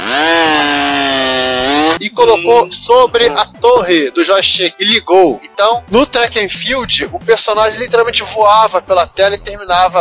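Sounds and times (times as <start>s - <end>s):
electric sander on an Atari 8-bit joystick running: 0.0s - 2.0s
speech: 2.2s - 9.9s.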